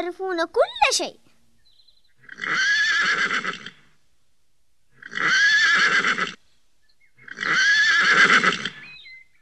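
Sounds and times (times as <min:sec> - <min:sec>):
speech: 0:00.0 - 0:01.3, 0:02.4 - 0:03.7
horse neighing: 0:02.2 - 0:03.8, 0:05.0 - 0:06.4, 0:07.2 - 0:08.8.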